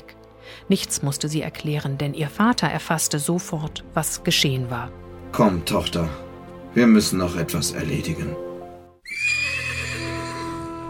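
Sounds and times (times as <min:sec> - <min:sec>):
speech: 0:00.6 - 0:08.5
horse hitched to a cart neighing: 0:09.0 - 0:10.8.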